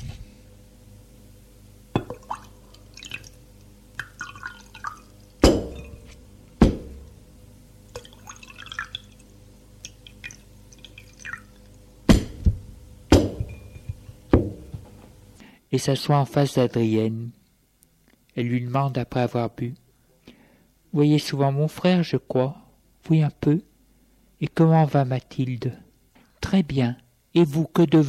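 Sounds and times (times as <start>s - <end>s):
drink being poured: 2.0s - 3.4s, 4.0s - 6.2s, 7.9s - 11.8s
faint dripping: 2.0s - 6.1s, 7.9s - 11.8s
bottle and two glasses clinking as set down on a table: 5.4s - 6.2s, 13.2s - 14.0s
speech: 15.7s - 17.4s, 18.4s - 19.8s, 20.9s - 23.7s, 24.4s - 25.8s, 26.5s - 28.0s.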